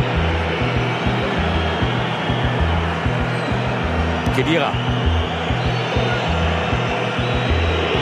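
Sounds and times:
large stadium crowd whistling at a football player: 0:00.0 - 0:08.0
speech: 0:04.4 - 0:05.0.

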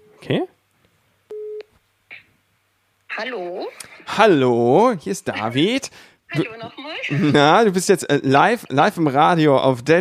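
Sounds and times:
speech: 0:00.3 - 0:00.5, 0:04.2 - 0:09.9
telephone call tone beep while dialing a mobile phone: 0:01.3 - 0:01.7
laughter: 0:07.0 - 0:07.7.

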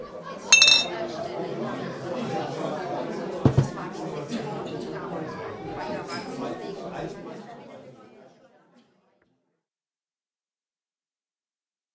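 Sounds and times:
steady murmur of chatter: 0:00.0 - 0:09.0
table noise: 0:00.6 - 0:00.9
bright glass clinks in a toast: 0:00.6 - 0:01.0.

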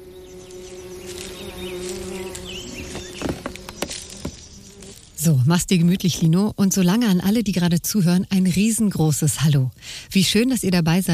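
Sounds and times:
bee buzzing with a low droning hum: 0:00.0 - 0:07.3
speech: 0:05.2 - 0:11.1.

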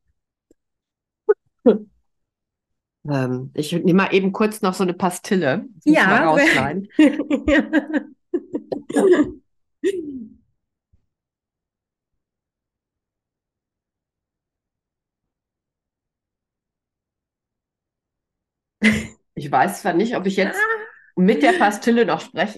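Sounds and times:
speech: 0:01.6 - 0:01.9, 0:03.1 - 0:08.1, 0:08.9 - 0:10.4, 0:18.8 - 0:22.5
laughter: 0:06.1 - 0:09.4
person coughing and clearing throat: 0:08.8 - 0:10.3.

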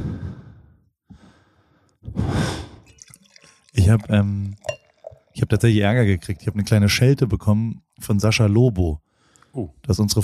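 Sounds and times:
longer fuller sigh-like breath: 0:00.0 - 0:02.8
soft breathing close to the microphone: 0:00.0 - 0:03.7, 0:09.0 - 0:09.6
speech: 0:03.9 - 0:04.7, 0:05.4 - 0:10.2.

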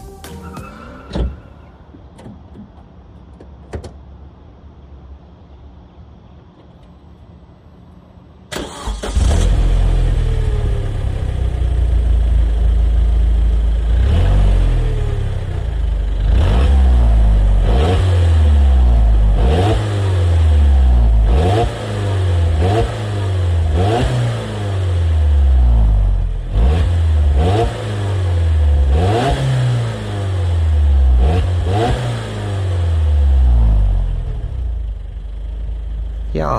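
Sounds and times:
Opel Speedster turbocharged petrol sports car engine cranking and firing up: 0:08.3 - 0:36.5
Opel Speedster turbocharged petrol engine revving over idle: 0:08.6 - 0:11.9, 0:13.8 - 0:34.8.

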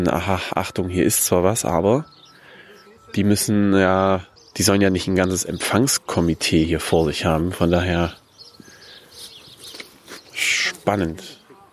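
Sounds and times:
speech: 0:00.0 - 0:02.2, 0:03.1 - 0:08.2, 0:10.9 - 0:11.4
birds chirping: 0:00.0 - 0:11.7.

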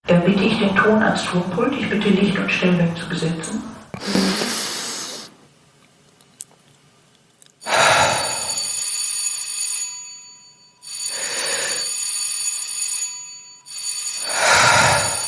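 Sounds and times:
speech: 0:00.2 - 0:04.7
electric bell signal ringing before a theatre performance: 0:07.6 - 0:15.2.

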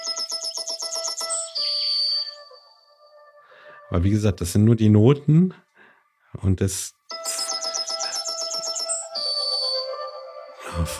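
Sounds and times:
yellowhammer song played on a musical instrument: 0:00.0 - 0:03.4, 0:07.1 - 0:10.9
speech: 0:03.9 - 0:05.6, 0:06.4 - 0:07.0.

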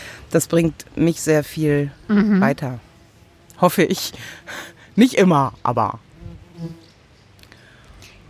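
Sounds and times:
speech: 0:00.3 - 0:02.9, 0:03.6 - 0:06.8
wasps buzzing close to the microphone: 0:00.5 - 0:07.0.

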